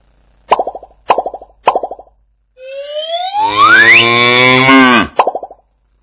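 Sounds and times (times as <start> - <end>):
cow mooing: 3.5 - 5.1.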